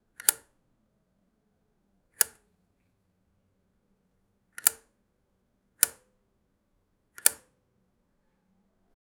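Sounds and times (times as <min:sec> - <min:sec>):
light switch: 0:00.2 - 0:00.5, 0:02.2 - 0:02.4, 0:04.6 - 0:04.9, 0:05.8 - 0:06.1, 0:07.2 - 0:07.5.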